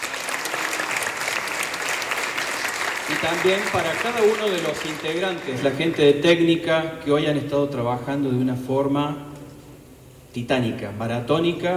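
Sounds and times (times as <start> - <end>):
audience applause at a jazz festival concert: 0.0 - 6.0
speech: 3.1 - 9.3, 10.3 - 11.7.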